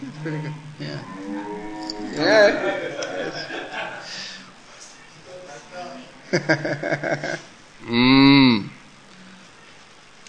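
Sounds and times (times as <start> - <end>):
murmured voices: 0.0 - 8.8
person doing a vocal imitation of a cow mooing: 0.2 - 2.6, 7.8 - 8.8
speech: 0.2 - 3.5, 6.3 - 8.7
laughter: 2.1 - 4.5, 6.3 - 7.5.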